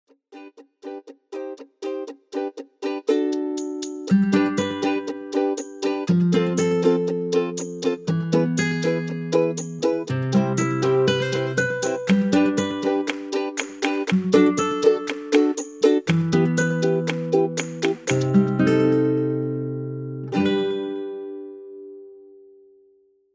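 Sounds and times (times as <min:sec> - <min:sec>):
ukulele ringtone: 0:00.3 - 0:22.2.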